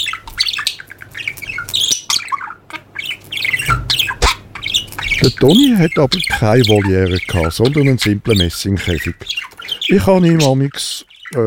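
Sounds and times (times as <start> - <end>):
budgerigar chirping and squawking: 0.0 - 11.4
speech: 5.2 - 11.4.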